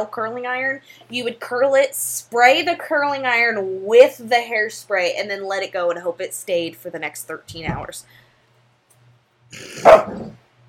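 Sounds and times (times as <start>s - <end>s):
speech: 0.0s - 8.2s, 9.5s - 10.4s
playful puppy yapping and barking: 9.8s - 10.4s.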